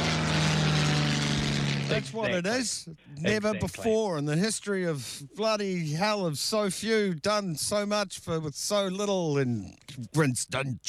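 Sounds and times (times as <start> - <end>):
Spitfire fighter aircraft propeller engine droning: 0.0 - 2.3
speech: 1.9 - 10.8.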